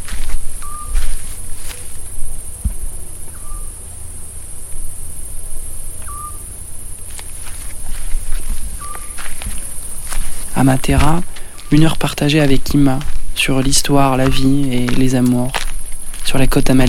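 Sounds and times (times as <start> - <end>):
chorus of crickets chirping at an agritourism farm in Puglia Italy: 0.0 - 16.8
soft footsteps crunching: 0.0 - 16.8
short whistled calls: 0.6 - 1.1, 3.2 - 3.9, 5.9 - 6.6, 8.7 - 9.8, 11.4 - 12.1
speech: 10.6 - 15.6, 16.3 - 16.8.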